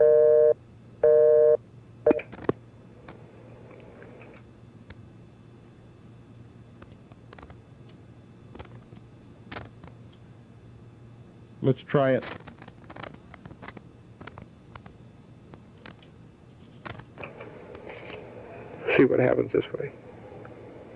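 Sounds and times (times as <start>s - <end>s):
telephone busy signal beeps: 0.0s - 2.2s
speech: 11.7s - 12.5s, 19.0s - 20.1s
faint hum of open telephone line hiss: 17.2s - 20.9s.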